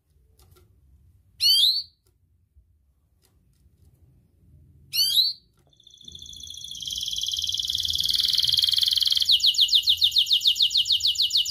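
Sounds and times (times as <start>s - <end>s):
Atlantic canary song: 1.4s - 2.1s, 4.9s - 11.5s.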